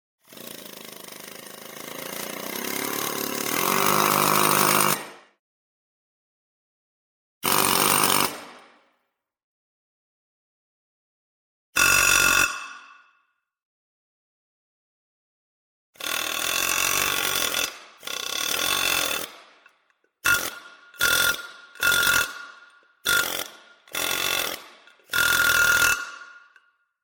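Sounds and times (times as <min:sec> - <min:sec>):
jackhammer drilling pavement: 0:00.3 - 0:05.2, 0:07.4 - 0:08.7, 0:16.0 - 0:26.6.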